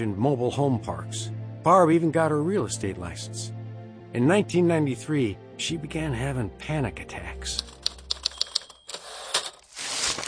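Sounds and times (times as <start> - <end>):
speech: 0.0 - 7.8
typewriter typing leases: 7.6 - 9.6.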